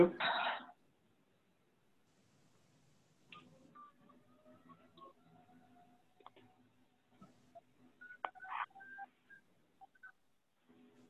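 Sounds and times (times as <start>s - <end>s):
speech: 0.0s - 0.3s
house phone touch-tone beeps: 8.0s - 10.1s.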